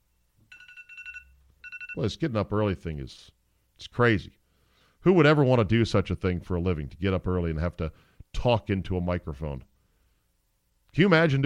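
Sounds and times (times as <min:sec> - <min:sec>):
electronic alarm beeping in rapid high-pitched pulses: 0:00.5 - 0:02.0
speech: 0:02.0 - 0:04.4, 0:05.0 - 0:09.7, 0:10.9 - 0:11.4.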